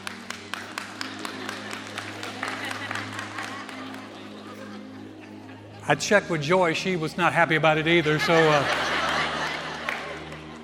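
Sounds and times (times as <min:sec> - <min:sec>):
woman in the audience clapping: 0:00.0 - 0:04.3
live audience laughter and chatter: 0:00.0 - 0:10.6
speech: 0:05.9 - 0:08.8.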